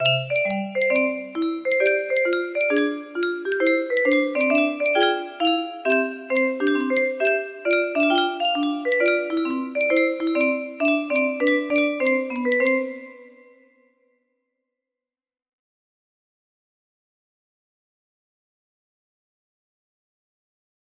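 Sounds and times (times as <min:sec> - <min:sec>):
swing lullaby music box melody: 0:00.0 - 0:13.7.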